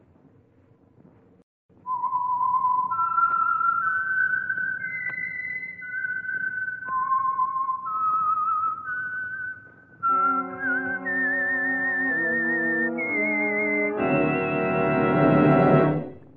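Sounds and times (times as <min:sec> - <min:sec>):
lone whistler whistling a slow wavering radio signature melody: 0:01.9 - 0:15.5
full orchestra playing the tune in rich sustained chords: 0:10.1 - 0:16.2.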